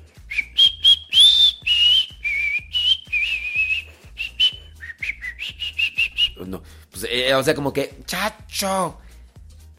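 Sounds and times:
steady low thumping beat: 0.0s - 6.5s
person whistling a lively tune: 0.1s - 6.5s
speech: 6.4s - 9.0s.

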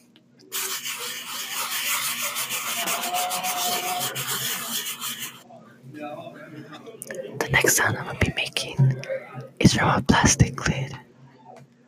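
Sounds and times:
hand rubbing a cardboard box: 0.6s - 5.4s
speech: 6.1s - 8.9s, 9.7s - 11.0s.

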